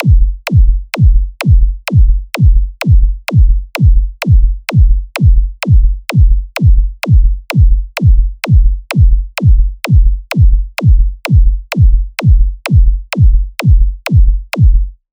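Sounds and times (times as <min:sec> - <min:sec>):
electronic beat at 128 bpm: 0:00.0 - 0:15.0.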